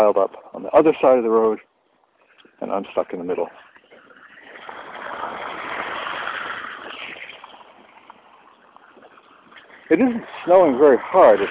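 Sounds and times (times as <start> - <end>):
speech: 0.0 - 1.7, 2.6 - 3.7, 9.9 - 11.4
car passing on narrow snowy road splashing ice-cold water: 2.9 - 11.4.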